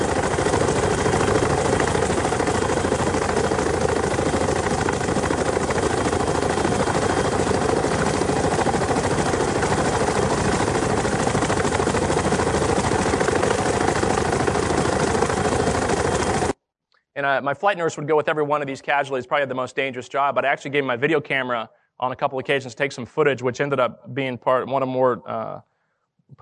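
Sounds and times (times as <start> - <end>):
helicopter engine running on the ground: 0.0 - 16.6
speech: 17.2 - 25.7.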